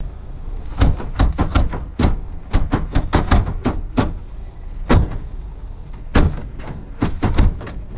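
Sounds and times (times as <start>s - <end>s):
heavy bus door rattling and thudding: 0.0s - 7.9s.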